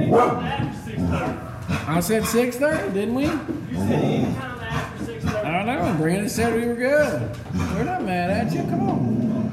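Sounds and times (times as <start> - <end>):
dog barking: 0.1 - 3.4
speech: 1.9 - 4.5, 5.9 - 9.3.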